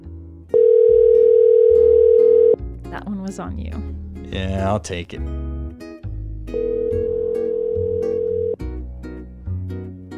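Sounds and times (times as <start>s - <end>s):
outgoing phone call ringing tone on a Rodecaster: 0.6s - 2.6s, 6.6s - 8.6s
speech: 3.3s - 5.6s.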